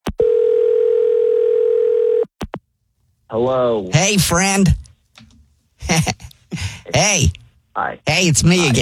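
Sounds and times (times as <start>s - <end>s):
telephone ringing tone of an outgoing call: 0.2s - 2.3s
speech: 3.3s - 4.8s, 5.9s - 6.2s, 7.0s - 8.7s.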